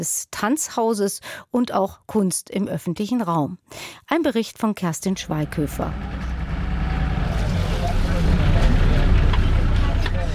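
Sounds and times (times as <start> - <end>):
speech: 0.0 - 6.4
water taxi engine rumbling while crossing a river: 5.1 - 10.3
wash of water: 5.4 - 10.2.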